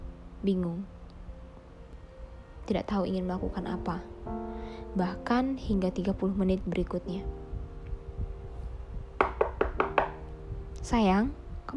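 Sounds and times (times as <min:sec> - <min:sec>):
speech: 0:00.4 - 0:01.0, 0:02.7 - 0:07.4, 0:10.8 - 0:11.7
knocking on a door: 0:09.2 - 0:10.3.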